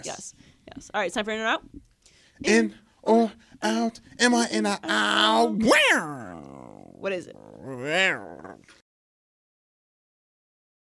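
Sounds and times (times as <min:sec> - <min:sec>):
speech: 0:00.0 - 0:01.8, 0:02.4 - 0:08.8
person's voice imitating a cat's meow: 0:04.8 - 0:08.8.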